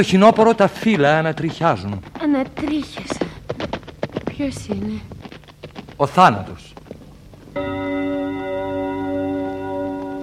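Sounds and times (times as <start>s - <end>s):
speech: 0.0s - 3.8s, 4.4s - 5.2s, 6.0s - 6.8s, 7.6s - 9.0s
clock chime striking the hour: 7.6s - 10.2s.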